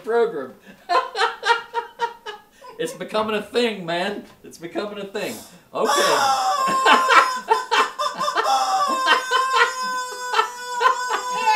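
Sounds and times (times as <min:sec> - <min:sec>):
speech: 0:00.0 - 0:01.0, 0:02.8 - 0:07.5
laughter: 0:00.8 - 0:02.9, 0:05.9 - 0:11.5
chicken squawk sound effect: 0:05.9 - 0:11.5.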